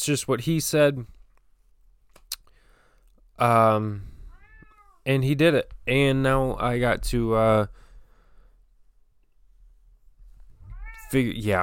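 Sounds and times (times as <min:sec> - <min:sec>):
speech: 0:00.0 - 0:01.2, 0:03.4 - 0:04.1, 0:05.0 - 0:07.8, 0:11.1 - 0:11.6
cat meowing: 0:04.3 - 0:05.0, 0:10.6 - 0:11.3.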